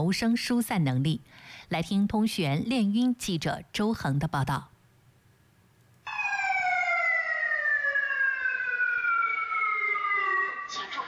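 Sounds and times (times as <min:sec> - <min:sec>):
speech: 0:00.0 - 0:04.7
fire alarm siren wailing inside an office building during a fire drill: 0:06.1 - 0:11.0.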